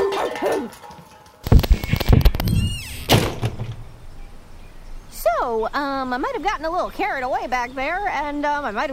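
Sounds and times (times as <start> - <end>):
knocks and thumps: 0.8 - 3.8
back door thudding shut: 2.1 - 3.9
speech: 5.6 - 8.9.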